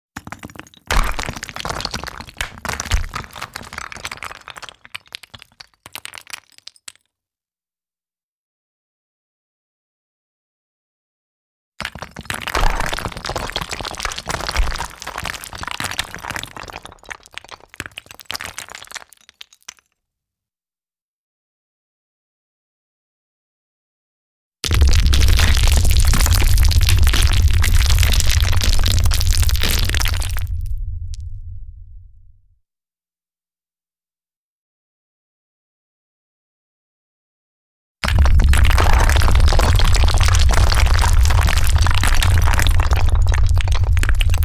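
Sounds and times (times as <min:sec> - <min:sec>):
stones falling: 0:00.2 - 0:07.0, 0:11.8 - 0:19.8, 0:24.6 - 0:31.3, 0:38.0 - 0:44.4.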